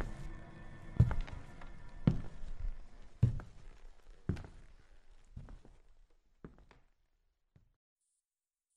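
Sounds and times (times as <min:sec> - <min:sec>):
slow heavy footsteps approaching outside a door: 0:01.0 - 0:06.8.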